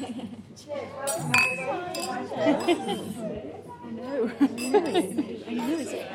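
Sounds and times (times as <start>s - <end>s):
laughter: 0.0s - 0.5s, 2.2s - 3.4s, 4.1s - 5.8s
lively overlapping chatter and voices: 0.0s - 6.1s
glasses clinking in a toast at a lunch table: 1.3s - 3.0s, 4.4s - 6.0s.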